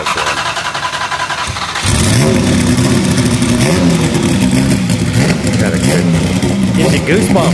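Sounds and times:
turbocharged V6 race car engine with one big turbo revving: 0.0s - 7.5s
speech: 7.1s - 7.5s.

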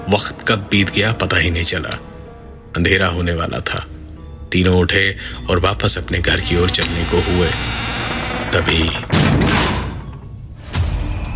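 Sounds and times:
speech: 0.1s - 2.1s, 2.8s - 3.9s, 4.5s - 9.5s
heavy door slamming shut: 8.1s - 10.4s.

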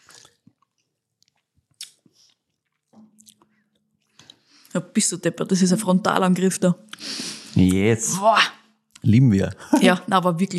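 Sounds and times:
mouth smacks while tasting a drink: 1.7s - 3.4s
speech: 4.8s - 10.5s.

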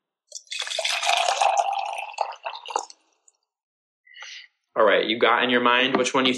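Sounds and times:
liquid pouring and splashing: 0.3s - 3.4s
speech: 5.0s - 6.3s.

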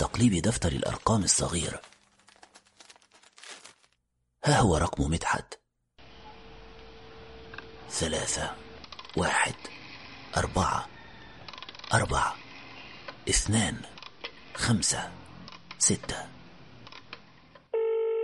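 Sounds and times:
speech: 0.2s - 1.9s, 4.4s - 5.6s, 7.9s - 8.6s, 9.2s - 10.9s, 11.9s - 12.4s, 13.3s - 13.9s, 14.6s - 15.2s, 15.8s - 16.3s
handling noise: 0.8s - 4.0s
rotary telephone dial being turned: 11.4s - 12.0s
telephone ringing tone: 17.7s - 18.2s.

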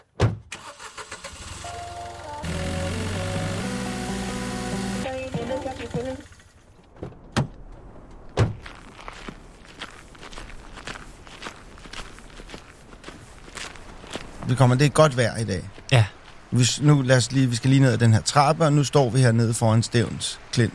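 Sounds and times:
car door thunk: 0.2s - 0.5s, 8.4s - 8.6s
car engine starting and humming: 0.5s - 6.8s
footsteps crunching outdoors: 6.8s - 16.5s
speech: 14.5s - 20.7s.

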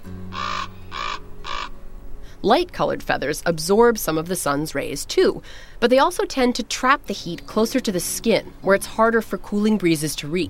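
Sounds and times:
common raven croaking: 0.3s - 1.8s
speech: 2.4s - 10.4s.

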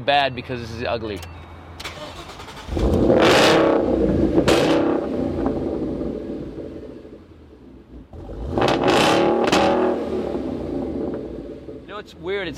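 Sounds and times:
speech: 0.0s - 1.4s, 12.2s - 12.5s
Coyote V8 engine revving: 1.9s - 7.1s, 8.0s - 12.5s
Coyote V8 exhaust crackle: 2.2s - 12.5s.

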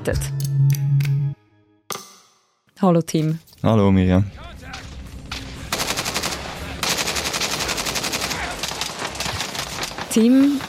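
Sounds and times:
speech: 0.0s - 0.8s, 2.8s - 4.5s, 10.1s - 10.6s
video game automatic gunfire from a shooter game: 5.7s - 10.6s.

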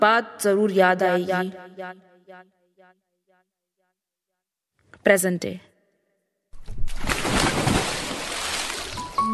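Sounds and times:
speech: 0.0s - 3.0s, 5.0s - 5.7s
loud splash of water thrown hard onto a face: 6.6s - 9.2s.

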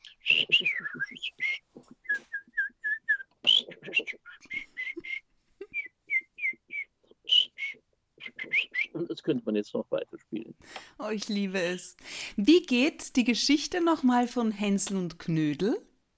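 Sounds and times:
person whistling an imitation of nightingale and blackbird song: 0.0s - 3.4s, 4.0s - 9.0s
speech: 9.3s - 15.9s.

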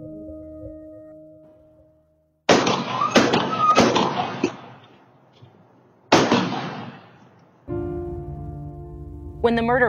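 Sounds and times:
gunshots recorded on outdoor surveillance camera audio: 2.5s - 5.1s, 6.1s - 7.4s.

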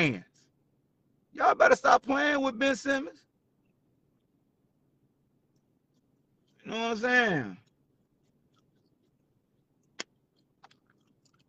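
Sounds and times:
speech: 0.0s - 0.3s, 1.4s - 3.3s, 6.6s - 7.6s
person chewing gum loudly: 7.6s - 11.4s.

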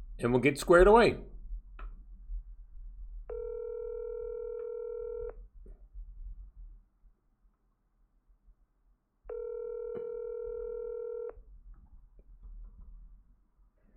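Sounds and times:
faint low hum: 0.0s - 13.9s
speech: 0.2s - 1.3s
steady telephone tone while a call is redialed: 3.3s - 5.4s, 9.3s - 11.4s.

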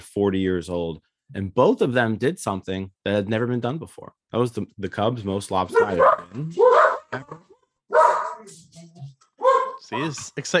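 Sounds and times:
speech: 0.1s - 7.5s, 9.9s - 10.5s
dog barking and yelping excitedly: 5.7s - 8.6s, 9.4s - 9.9s
laughter: 9.9s - 10.5s.

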